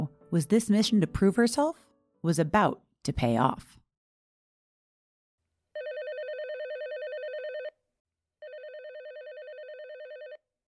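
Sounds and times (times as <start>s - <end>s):
speech: 0.3s - 3.8s
telephone ringing with electronic trill: 5.8s - 7.8s, 8.4s - 10.5s.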